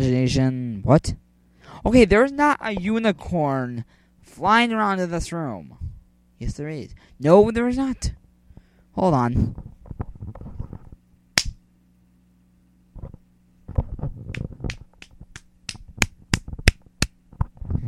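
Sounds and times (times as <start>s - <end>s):
low hum: 0.0s - 17.8s
speech: 0.3s - 1.2s, 1.8s - 8.2s, 9.0s - 10.1s
hand slapping someone's head: 11.4s - 11.6s, 14.3s - 17.2s.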